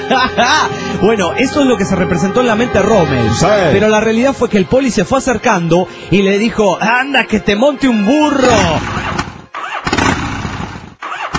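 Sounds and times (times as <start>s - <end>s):
laughter: 0.0s - 1.2s
speech: 0.1s - 9.2s
motor scooter engine cranking and failing to start: 8.8s - 11.3s.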